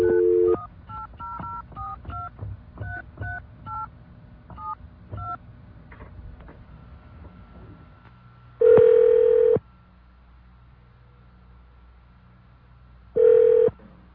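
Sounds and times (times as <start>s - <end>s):
telephone dial tone: 0.0s - 0.6s, 8.6s - 9.6s, 13.2s - 13.8s.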